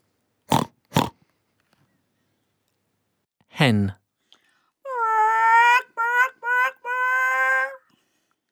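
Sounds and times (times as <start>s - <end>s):
pig oinking: 0.5s - 1.1s
speech: 3.6s - 4.0s
laughter: 4.9s - 7.8s.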